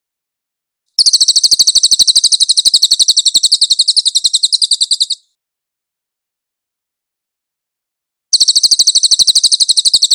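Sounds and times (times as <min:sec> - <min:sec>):
Pygmy Bushtit singing a high-pitched chattering trill: 0:01.0 - 0:05.3, 0:08.4 - 0:10.1.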